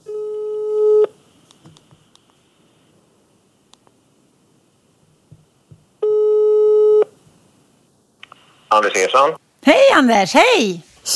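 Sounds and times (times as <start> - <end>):
telephone ringback tone: 0.0 - 1.1, 6.0 - 7.1
speech: 8.8 - 11.1.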